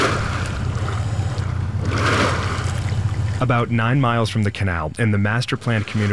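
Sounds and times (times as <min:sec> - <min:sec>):
Colorado River water pouring from a pipe into holding ponds: 0:00.0 - 0:03.5
low rumble: 0:00.0 - 0:06.0
speech: 0:03.4 - 0:06.1.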